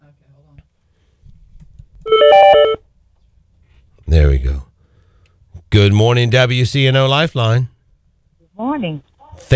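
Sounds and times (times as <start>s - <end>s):
electronic phone ring from a transferred call: 2.1s - 2.8s
speech: 4.2s - 4.7s, 5.8s - 7.7s, 8.6s - 9.5s.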